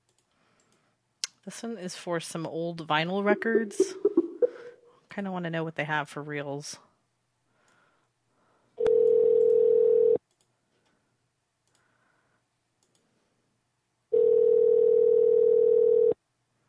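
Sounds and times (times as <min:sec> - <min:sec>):
speech: 0:01.5 - 0:04.1, 0:05.2 - 0:06.9
telephone ringing tone: 0:08.8 - 0:10.2, 0:14.1 - 0:16.2.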